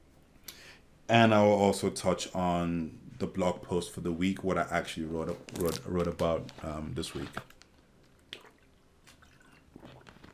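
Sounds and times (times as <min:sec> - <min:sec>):
speech: 0:01.1 - 0:07.6
person drinking water: 0:08.1 - 0:10.3
soft squishy gulps and swallows of water: 0:08.2 - 0:10.3.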